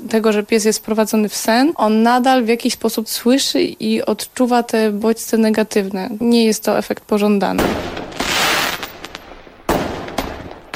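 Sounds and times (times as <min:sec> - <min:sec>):
speech: 0:00.1 - 0:08.0
fireworks exploding with crackle: 0:07.5 - 0:10.7.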